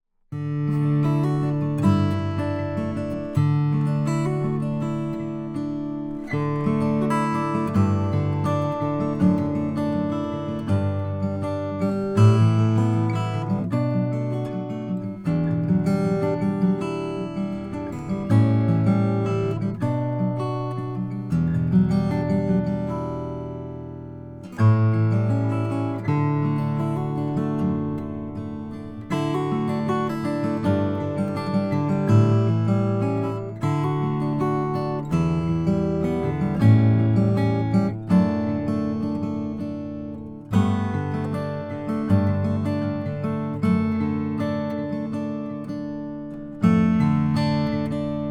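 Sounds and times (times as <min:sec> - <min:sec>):
cutaway Brazilian rosewood guitar: 0:00.0 - 0:48.2.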